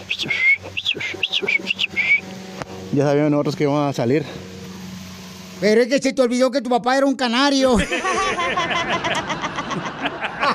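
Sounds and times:
person whistling a calling tune: 0:00.0 - 0:02.3
speech: 0:03.0 - 0:04.4, 0:05.6 - 0:09.5
laughter: 0:07.7 - 0:10.5.

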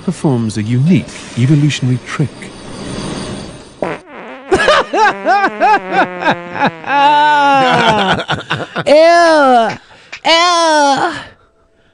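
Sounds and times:
speech: 0:00.0 - 0:03.0, 0:05.0 - 0:11.3
long loud buzzy fart: 0:03.8 - 0:07.0
laughter: 0:04.6 - 0:09.0.

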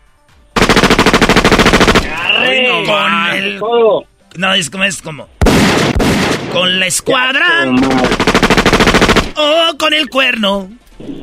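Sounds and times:
machine gun fire: 0:00.6 - 0:02.2, 0:05.4 - 0:06.7, 0:07.8 - 0:09.4
speech: 0:02.8 - 0:05.9, 0:06.5 - 0:08.8, 0:09.4 - 0:11.2.

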